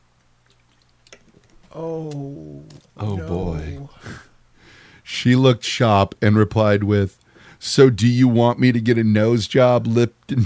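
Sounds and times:
slurping gulp of water: 0:00.4 - 0:01.7
person sipping water: 0:00.4 - 0:01.8
soft wet mouth clicks: 0:00.4 - 0:02.9
speech: 0:01.7 - 0:04.2, 0:05.2 - 0:10.4.

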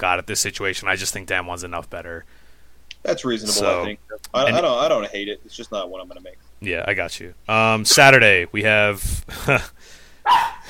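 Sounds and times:
speech: 0:00.0 - 0:02.4, 0:03.0 - 0:10.6
faint low hum: 0:00.0 - 0:10.6
dogs barking: 0:10.2 - 0:10.6.

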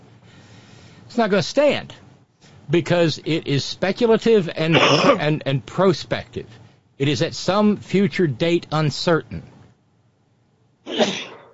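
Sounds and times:
speech: 0:01.1 - 0:02.0, 0:02.7 - 0:09.5
sneeze: 0:10.9 - 0:11.5.

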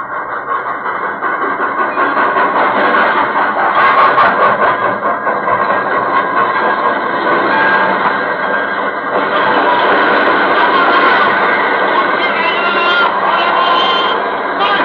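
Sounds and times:
train rumbling into a station: 0:00.0 - 0:14.8
high train brake squeal: 0:07.4 - 0:14.8.

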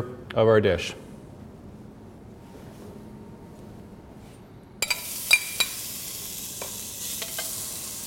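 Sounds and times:
speech: 0:00.0 - 0:01.0
utensil clinking against pot: 0:04.8 - 0:05.8
bacon rendering fat and sizzling in a pot: 0:04.8 - 0:08.0.

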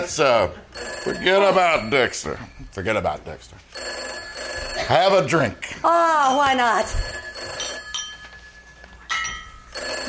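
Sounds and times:
speech: 0:00.0 - 0:03.8, 0:04.9 - 0:07.1
low hum: 0:00.0 - 0:10.0
telephone ringing: 0:00.7 - 0:02.8, 0:03.7 - 0:05.6, 0:06.2 - 0:10.0.

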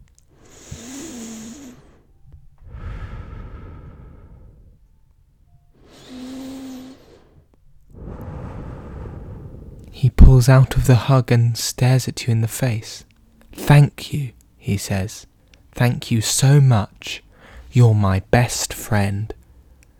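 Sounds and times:
heavy breathing: 0:00.3 - 0:05.0, 0:05.7 - 0:10.9, 0:17.2 - 0:17.8
speech: 0:10.0 - 0:19.4.

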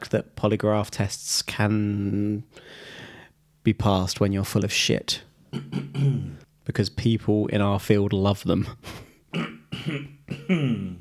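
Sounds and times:
speech: 0:00.1 - 0:03.0, 0:03.6 - 0:11.0
person coughing: 0:05.5 - 0:06.4, 0:08.9 - 0:11.0.

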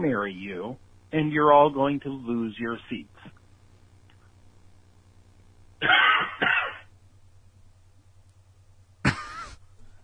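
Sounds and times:
speech: 0:00.0 - 0:03.4
steady low hum: 0:00.0 - 0:10.0
person coughing: 0:05.8 - 0:06.9, 0:09.1 - 0:09.6.

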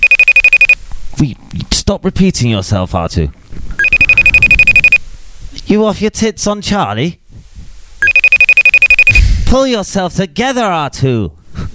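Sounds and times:
mobile phone ringing with a rapid pulsing electronic tone: 0:00.0 - 0:00.8, 0:03.8 - 0:05.0, 0:08.0 - 0:09.3
speech: 0:01.2 - 0:03.6, 0:05.7 - 0:07.2, 0:09.5 - 0:11.4.

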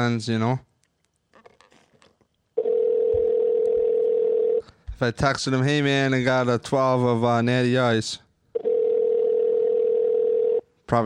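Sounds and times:
speech: 0:00.0 - 0:00.7, 0:05.0 - 0:08.2
electronic ringing tone from an outgoing phone call: 0:02.6 - 0:04.6, 0:08.6 - 0:10.7.

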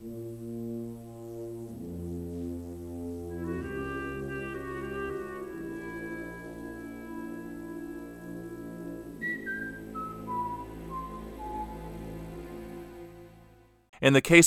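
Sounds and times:
full warm orchestral accompaniment: 0:00.8 - 0:13.9
priests whistling a film theme melody: 0:03.4 - 0:12.6
speech: 0:14.0 - 0:14.4.

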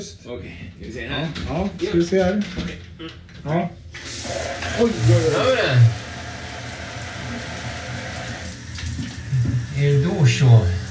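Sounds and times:
speech: 0:00.0 - 0:06.0, 0:09.8 - 0:10.8
shower with a glass screen spraying water: 0:04.0 - 0:10.8.

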